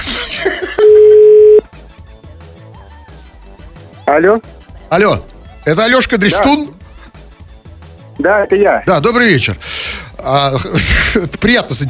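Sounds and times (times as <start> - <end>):
laughter: 0.2 - 1.0, 10.5 - 11.4
low-pitched ringback tone on a phone line: 0.8 - 1.7
speech: 4.1 - 6.8, 8.2 - 11.8.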